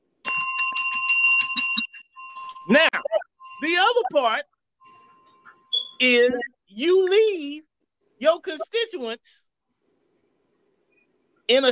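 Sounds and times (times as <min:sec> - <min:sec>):
bright metallic bell ringing in rapid trills: 0:00.2 - 0:03.8
speech: 0:02.7 - 0:04.5, 0:06.0 - 0:09.4, 0:11.5 - 0:11.7.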